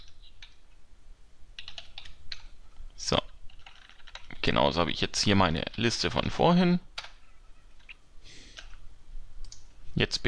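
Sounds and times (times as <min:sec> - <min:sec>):
typing on a computer keyboard: 0:01.6 - 0:02.5, 0:03.5 - 0:04.3
speech: 0:03.1 - 0:03.3, 0:04.4 - 0:06.9, 0:10.0 - 0:10.2.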